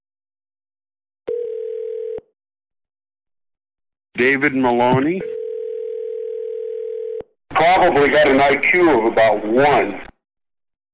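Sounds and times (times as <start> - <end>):
telephone dial tone after a call is disconnected: 1.3 - 2.3, 5.3 - 7.3
speech: 4.2 - 5.4, 7.7 - 10.1.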